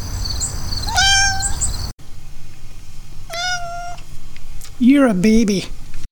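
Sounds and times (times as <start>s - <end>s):
cat meowing: 0.8s - 1.6s, 3.3s - 4.0s
speech: 4.8s - 5.8s.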